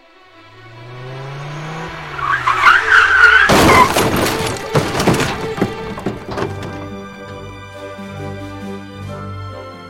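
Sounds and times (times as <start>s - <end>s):
car tyres screeching in a skid on a motorway: 1.5s - 7.6s
loud crunching impact of a minor rear-end collision: 1.6s - 7.5s
debris clattering and bumping: 3.2s - 7.6s.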